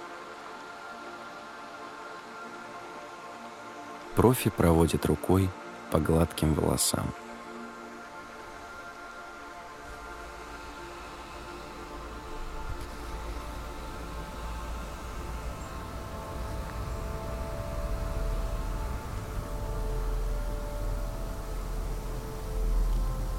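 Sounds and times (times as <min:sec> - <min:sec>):
speech: 0:04.2 - 0:07.2
hair dryer blowing while drying and styling hair: 0:08.3 - 0:23.2.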